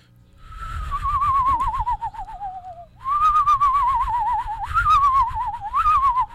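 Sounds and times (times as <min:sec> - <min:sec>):
person imitating a screech owl trill using saliva in the throat: 0:01.4 - 0:06.3.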